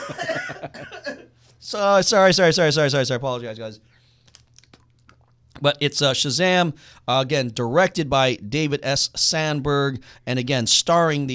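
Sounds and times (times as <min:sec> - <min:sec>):
person coughing: 0:00.0 - 0:01.4
speech: 0:01.7 - 0:03.9, 0:05.6 - 0:11.3.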